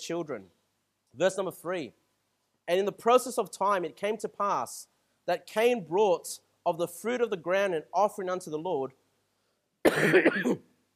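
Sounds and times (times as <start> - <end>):
speech: 0.0 - 2.0, 2.7 - 9.0, 9.9 - 10.7
preacher coughing during a church sermon: 9.8 - 10.7.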